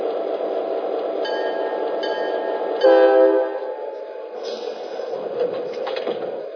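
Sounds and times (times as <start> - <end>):
passenger train rumbling into station: 0.0 - 6.5
rolling rail noise: 0.0 - 6.5
sustained horn-like tone: 2.8 - 3.8.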